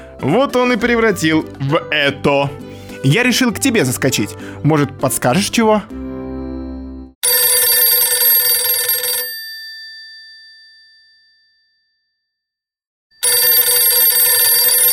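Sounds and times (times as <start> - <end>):
speech: 0.2 - 6.0
old-style telephone bell ringing: 7.2 - 11.8, 13.2 - 14.9.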